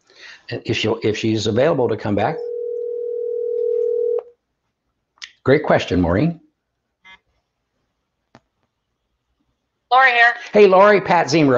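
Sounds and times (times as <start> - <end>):
speech: 0.4 - 2.5, 5.5 - 6.4, 10.1 - 11.5
telephone dial tone while calling: 2.4 - 4.3.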